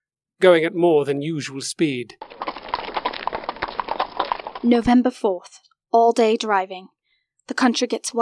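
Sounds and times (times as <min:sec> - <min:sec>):
speech: 0:00.4 - 0:02.6, 0:04.6 - 0:08.2
horse hooves clip-clopping along a track by a river: 0:02.1 - 0:05.1.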